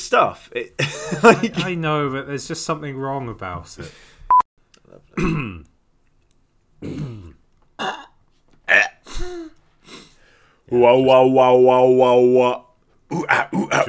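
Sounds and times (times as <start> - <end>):
speech: 0.1 - 4.1, 4.9 - 5.7, 6.8 - 8.0, 10.7 - 13.8
laughter: 0.8 - 1.9
throat clearing: 4.9 - 5.7, 6.8 - 9.6, 13.1 - 13.8
rough hacking coughs: 5.1 - 5.7, 6.8 - 9.6, 13.1 - 13.8.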